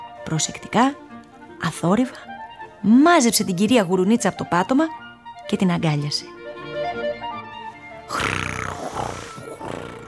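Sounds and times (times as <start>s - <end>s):
speech: 0.2s - 1.0s, 1.6s - 6.4s
wolf snoring: 7.8s - 10.0s.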